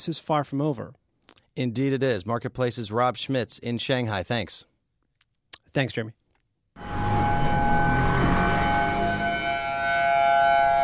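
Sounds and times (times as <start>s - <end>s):
speech: 0.0s - 1.0s, 1.6s - 4.7s, 5.7s - 6.2s
civil defense tsunami warning siren wailing in Honolulu: 6.8s - 10.8s.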